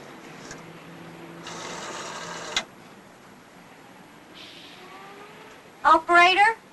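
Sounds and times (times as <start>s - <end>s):
rotary dial on a coin-operated payphone spinning back: 1.4s - 2.7s
speech: 5.9s - 6.6s.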